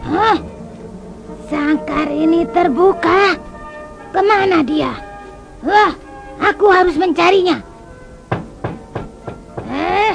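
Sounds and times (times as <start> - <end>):
speech: 0.1 - 0.5, 1.5 - 3.5, 4.1 - 5.0, 5.6 - 7.7
firm knocking on a house door: 8.3 - 9.9.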